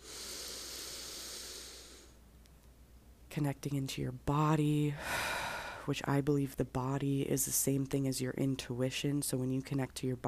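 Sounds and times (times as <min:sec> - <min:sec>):
person taking a long deep breath: 0:00.0 - 0:02.2, 0:05.0 - 0:05.9
speech: 0:03.4 - 0:10.2.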